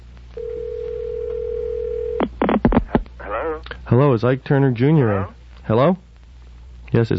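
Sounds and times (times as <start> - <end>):
telephone ringback tone on an outgoing call through an outside line: 0.4 - 2.2
speech: 3.6 - 6.0, 6.9 - 7.1.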